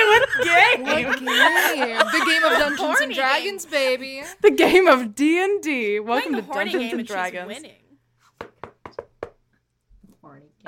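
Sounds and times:
laughter: 0.0s - 4.9s
speech: 0.4s - 7.8s
knocking on a door: 8.4s - 9.4s.

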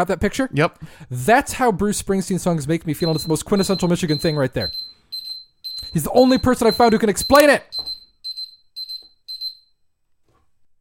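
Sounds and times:
speech: 0.0s - 4.9s, 5.9s - 7.9s
timer high-pitched electronic beeps: 3.0s - 9.7s.

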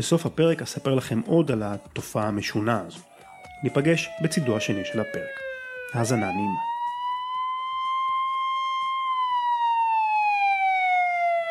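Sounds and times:
speech: 0.0s - 6.7s
ambulance siren wailing as the vehicle passes: 3.0s - 11.4s.

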